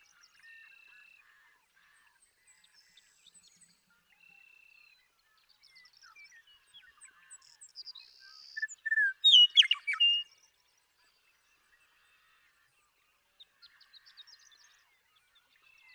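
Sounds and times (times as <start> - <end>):
male western meadowlark singing in Sierra Valley, eastern California: 8.5 - 10.3.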